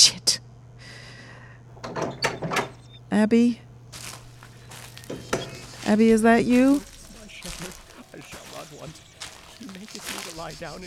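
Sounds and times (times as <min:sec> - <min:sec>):
door opening with scraping rattling bursts: 0:01.7 - 0:03.1, 0:05.0 - 0:06.0
speech: 0:03.2 - 0:03.6, 0:05.9 - 0:06.9, 0:10.5 - 0:10.8.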